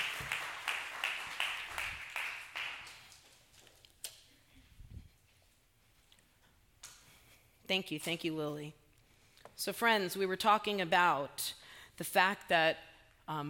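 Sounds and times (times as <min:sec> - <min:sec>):
audience applause for a woman who has spoken: 0:00.0 - 0:03.2
speech: 0:07.7 - 0:08.8, 0:09.6 - 0:13.4.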